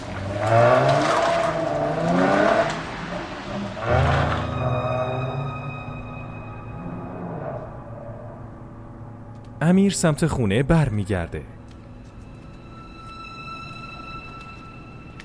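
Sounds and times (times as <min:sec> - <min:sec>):
car engine revving: 0:00.0 - 0:08.6
speech: 0:09.7 - 0:11.6.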